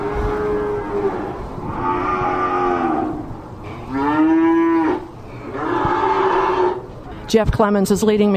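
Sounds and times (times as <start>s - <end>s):
cows with calves mooing in holding pens at a livestock auction: 0.0s - 6.8s
speech: 7.3s - 8.3s.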